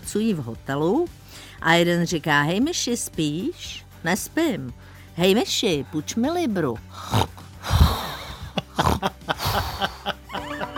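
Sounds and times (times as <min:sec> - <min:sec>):
speech: 0:00.1 - 0:07.4
person snoring loudly: 0:06.9 - 0:10.2
laughter: 0:08.0 - 0:10.7.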